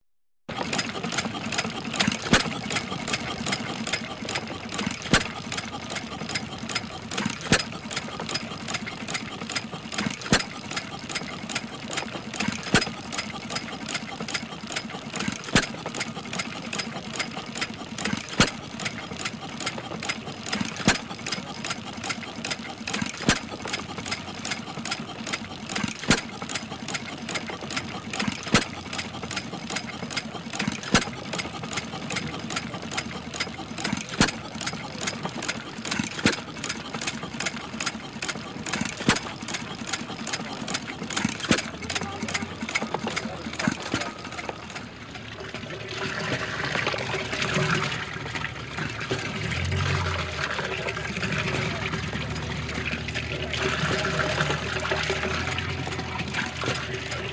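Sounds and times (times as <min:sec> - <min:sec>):
laughter: 0:00.5 - 0:45.0
old petrol pump slowly pumping water: 0:00.5 - 0:57.3.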